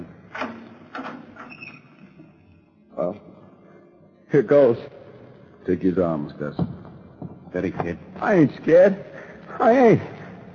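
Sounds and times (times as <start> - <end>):
heavy prison cell door unlocking with a metallic clunk: 0.3 - 1.6
heavy prison cell door grinding and squeaking as it slides: 0.4 - 2.1
speech: 4.3 - 5.0, 5.6 - 6.8, 7.6 - 10.1.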